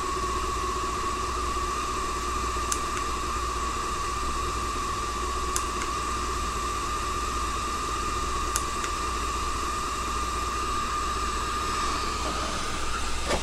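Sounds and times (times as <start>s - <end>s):
underlying hum: 0.0s - 13.4s
appliance releasing steam: 9.4s - 13.4s.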